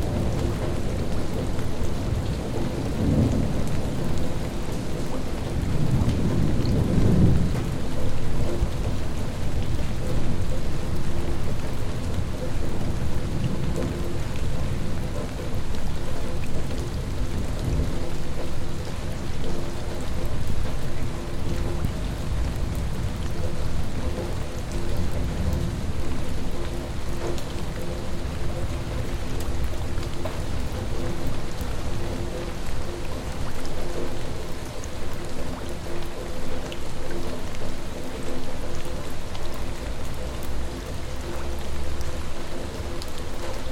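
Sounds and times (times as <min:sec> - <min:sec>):
rain in Wroclaw: 0:00.0 - 0:43.6.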